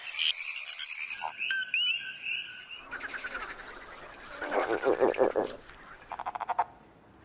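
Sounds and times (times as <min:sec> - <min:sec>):
frogs croaking: 0:00.0 - 0:06.8.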